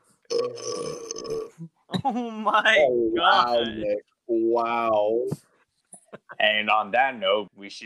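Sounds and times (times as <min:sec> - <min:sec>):
person burping into a microphone: 0:00.3 - 0:01.6
speech: 0:00.4 - 0:01.0, 0:01.6 - 0:05.5, 0:06.3 - 0:07.8.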